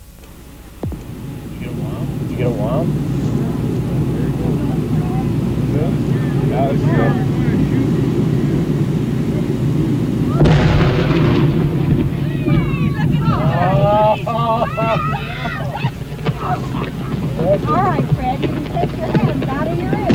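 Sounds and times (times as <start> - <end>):
loud sustained roaring rumble of the blast: 0.0 - 20.1
spectators' voices on the sand dunes: 0.8 - 20.1
laughter: 1.6 - 10.4, 11.7 - 20.1
explosives blasting a whale carcass on a beach: 10.3 - 13.7.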